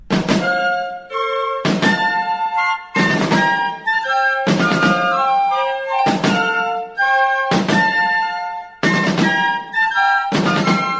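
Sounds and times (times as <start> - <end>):
heavy drum strokes: 0.0 - 0.7
Spanish royalist military band playing a stately march: 0.0 - 10.9.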